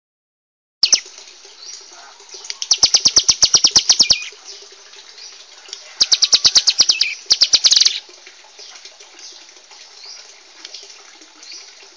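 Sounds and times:
bar-winged prinia adult and young birds singing: 0.8s - 1.0s, 1.6s - 4.4s, 5.9s - 8.0s.

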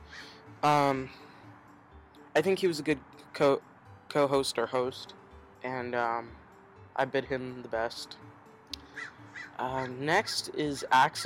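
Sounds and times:
crow cawing: 0.1s - 0.3s, 8.9s - 10.0s
speech: 0.6s - 1.2s, 2.4s - 6.4s, 7.0s - 8.3s, 9.0s - 11.2s.

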